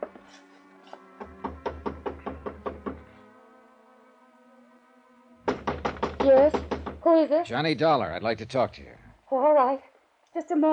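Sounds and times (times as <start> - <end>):
knocking on an apartment door: 1.2 - 3.2, 5.4 - 7.2
speech: 6.3 - 10.7.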